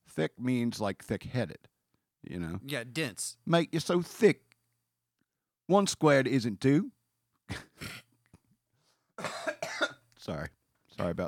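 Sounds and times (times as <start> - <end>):
speech: 0.2 - 4.5, 5.7 - 8.0, 10.3 - 11.2
person coughing: 9.2 - 10.0.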